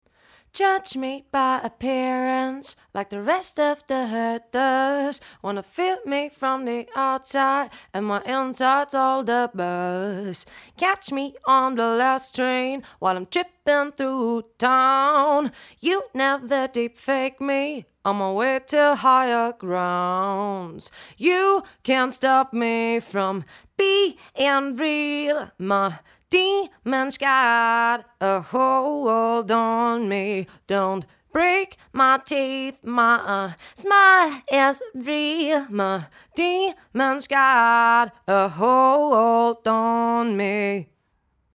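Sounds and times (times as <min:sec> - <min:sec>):
female vocal through LCT 1040 warm tube: 0:00.4 - 0:41.1.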